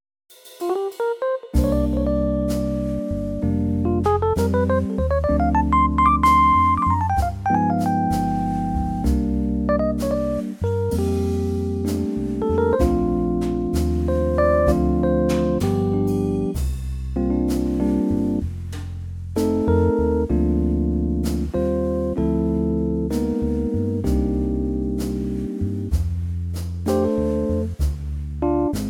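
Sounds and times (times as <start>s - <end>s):
Rhodes electric piano trio in B flat: 0.6s - 28.8s.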